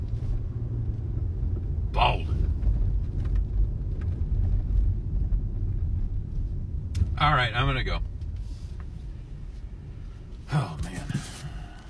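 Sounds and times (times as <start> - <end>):
car moving along a road heard from inside: 0.0 - 11.8
speech: 7.2 - 8.1.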